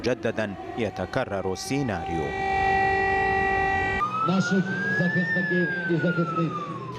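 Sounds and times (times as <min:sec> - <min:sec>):
speech: 0:00.0 - 0:02.6, 0:04.2 - 0:06.9
air raid siren wailing across a city: 0:00.4 - 0:06.9
steady electronic tone: 0:01.6 - 0:04.9.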